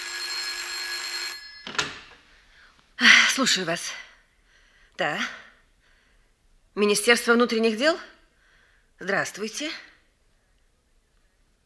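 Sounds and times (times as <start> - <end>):
old-style telephone bell ringing in an office reception: 0.0 - 2.1
speech: 3.4 - 4.0, 5.0 - 5.4, 6.8 - 8.2, 9.0 - 9.9.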